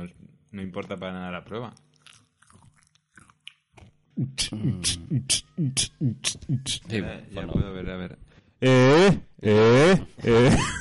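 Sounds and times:
speech: 0:00.0 - 0:01.9, 0:04.2 - 0:10.8
chewing and crunching food into microphone: 0:00.0 - 0:04.2
wet mouth sounds: 0:01.8 - 0:06.9.

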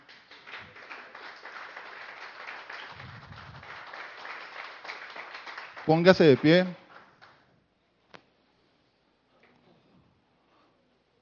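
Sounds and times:
audience applauding: 0:00.0 - 0:07.4
speech: 0:05.9 - 0:06.8.

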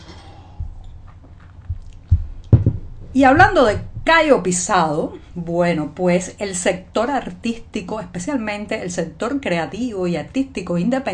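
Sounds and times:
mouth and swallowing noises from sipping a drink: 0:00.2 - 0:03.1
light thumps: 0:00.6 - 0:04.5
speech: 0:03.1 - 0:11.1.

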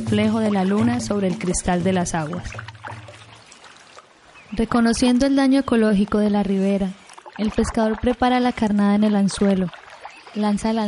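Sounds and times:
canoe paddle splashing and swishing through river water: 0:00.0 - 0:04.6, 0:07.0 - 0:10.8
faint trickle of water: 0:00.0 - 0:04.7, 0:06.0 - 0:10.8
speech: 0:00.1 - 0:02.8, 0:04.5 - 0:10.8.

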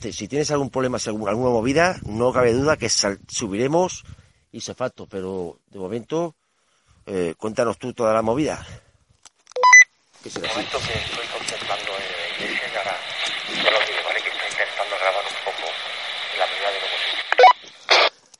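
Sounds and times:
speech: 0:00.0 - 0:06.4, 0:07.1 - 0:08.8, 0:10.2 - 0:11.7
short electronic beeps: 0:09.6 - 0:09.9, 0:17.4 - 0:17.6
garbled crackling phone line interference: 0:10.2 - 0:18.3.

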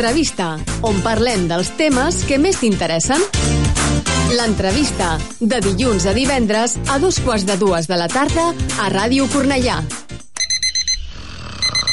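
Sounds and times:
speech: 0:00.0 - 0:03.6, 0:04.3 - 0:10.0
alarm clock shrill electronic beeps: 0:10.4 - 0:11.9.

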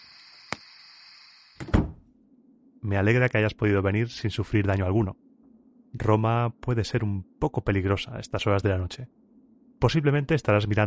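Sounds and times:
steady high hiss: 0:00.0 - 0:01.6
door pushed shut with a solid thud and rattle: 0:01.6 - 0:02.0
speech: 0:02.8 - 0:05.2, 0:05.9 - 0:09.2, 0:09.8 - 0:10.8.

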